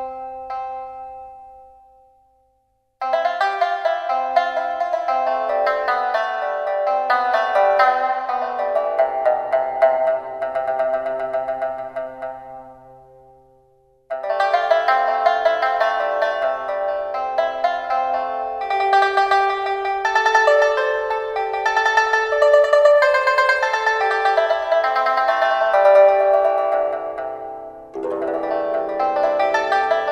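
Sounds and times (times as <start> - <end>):
pipa Chinese mandolin playing: 3.1 - 13.2, 14.1 - 30.1.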